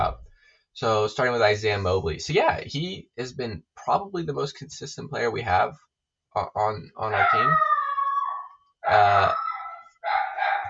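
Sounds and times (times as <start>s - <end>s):
speech: 0.8s - 7.8s, 8.8s - 9.4s
dog barking: 7.2s - 10.6s.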